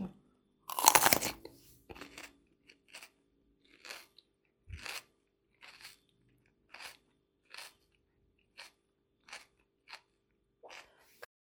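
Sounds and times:
biting into a Bulgarian pepper: 0:00.7 - 0:03.2, 0:03.7 - 0:06.1, 0:06.7 - 0:07.9, 0:08.5 - 0:11.0.

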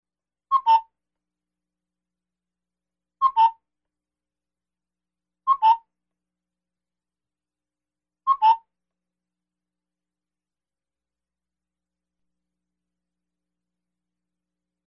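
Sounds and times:
cuckoo clock: 0:00.5 - 0:00.9, 0:03.2 - 0:03.6, 0:05.5 - 0:06.0, 0:08.3 - 0:08.7.

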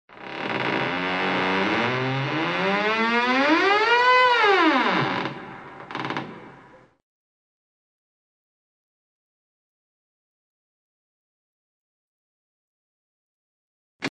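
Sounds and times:
exaggerated door creaks: 0:00.1 - 0:06.8.

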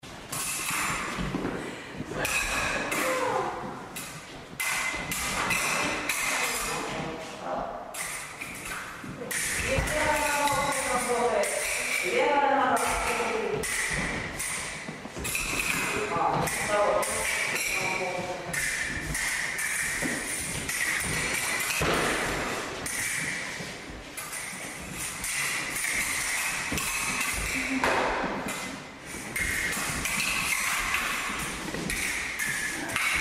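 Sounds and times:
workout ambience in a gym hall: 0:00.0 - 0:33.1.

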